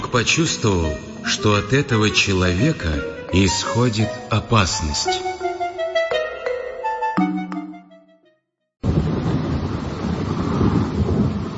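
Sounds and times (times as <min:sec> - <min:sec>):
speech: 0:00.1 - 0:05.3
ringing musical tones: 0:03.2 - 0:08.3
heavy rain downpour on a river in a forest: 0:08.8 - 0:11.5
thunder: 0:08.8 - 0:11.5.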